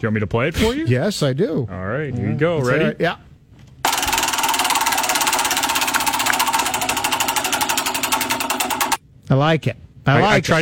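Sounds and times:
speech: 0.0s - 3.3s, 9.3s - 10.6s
spinning wheel sound effect with rapid ratchet-like mechanical clicking: 3.8s - 9.0s.

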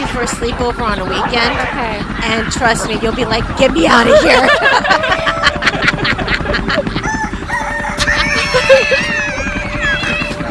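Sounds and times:
speech: 0.1s - 5.5s
laughter: 2.5s - 10.4s
rooster crowing: 6.7s - 10.4s.

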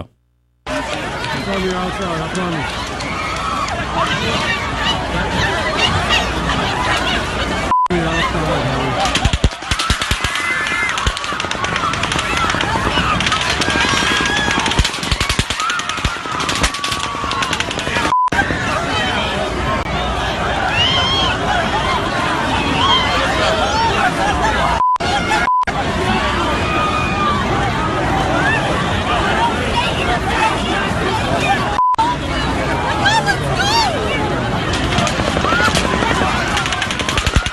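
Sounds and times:
loud crowd commotion with people running: 0.6s - 37.5s
voices shouting: 0.7s - 37.5s
sustained automatic gunfire during a mass shooting: 9.0s - 18.2s, 34.7s - 37.5s.

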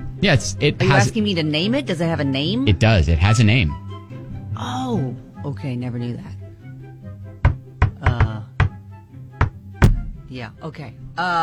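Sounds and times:
speech: 0.2s - 3.8s, 4.6s - 6.4s, 10.3s - 11.4s
rhythmic solid knocking: 9.4s - 10.9s.

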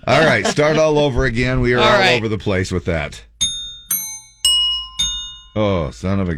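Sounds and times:
laughter: 0.0s - 1.2s, 1.8s - 2.3s
speech: 0.1s - 3.3s, 5.6s - 6.3s
bells rung for tuning: 3.4s - 5.9s.

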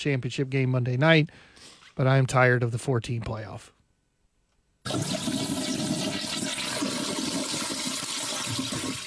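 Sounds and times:
speech: 0.0s - 3.8s, 4.8s - 5.3s
toilet flushing: 4.9s - 9.0s.

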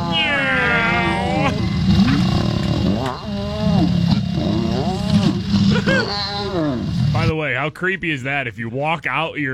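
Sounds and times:
lion's low rumbling snarl: 0.0s - 7.3s
lions mating with growling yowls: 0.0s - 7.3s
speech: 7.7s - 9.5s.

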